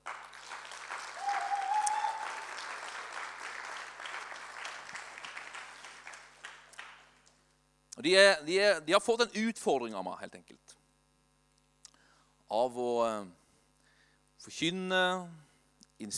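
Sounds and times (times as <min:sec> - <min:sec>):
audience applause: 0:00.0 - 0:07.3
speech: 0:08.0 - 0:10.7, 0:12.5 - 0:13.4, 0:14.4 - 0:15.4, 0:16.0 - 0:16.1.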